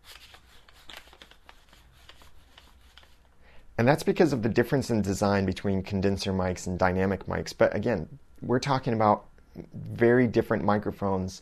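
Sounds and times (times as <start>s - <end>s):
paper dollar bill rubbed and crumpled in front of a lavalier microphone: 0.0s - 3.3s
speech: 3.8s - 11.3s.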